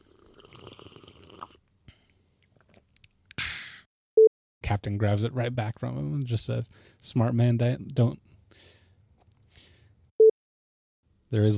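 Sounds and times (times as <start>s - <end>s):
person sipping a drink with wet mouth sounds: 0.0s - 3.2s
speech: 4.7s - 8.8s, 11.3s - 11.5s
sharp breathy exhale: 8.5s - 9.9s.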